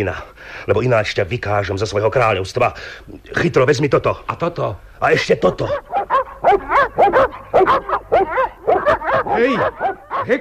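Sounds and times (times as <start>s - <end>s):
speech: 0.0s - 10.3s
several dogs barking and yelping while chasing people: 5.6s - 10.3s.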